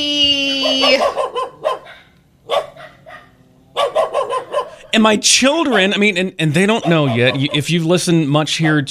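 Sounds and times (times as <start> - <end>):
small puppy barking at a birthday get-together: 0.6 - 4.9, 6.8 - 7.7
speech: 0.9 - 1.5, 4.9 - 8.9.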